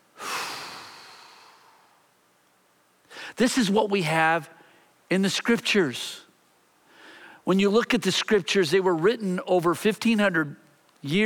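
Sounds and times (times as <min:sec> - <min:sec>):
single deep human breath: 0:00.2 - 0:02.0, 0:03.1 - 0:03.4, 0:06.8 - 0:07.4
speech: 0:03.4 - 0:06.2, 0:07.4 - 0:11.2.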